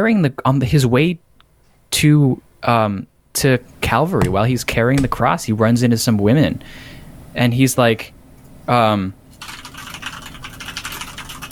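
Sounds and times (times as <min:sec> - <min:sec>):
speech: 0:00.0 - 0:01.3, 0:01.9 - 0:09.2
fast typing on a loud computer keyboard: 0:09.4 - 0:11.4.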